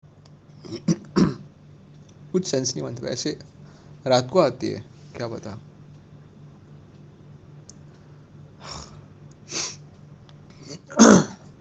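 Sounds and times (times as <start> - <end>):
faint room hiss: 0.1 - 11.5
speech: 0.6 - 1.2, 2.3 - 5.7
person coughing: 0.7 - 1.4, 10.6 - 11.4.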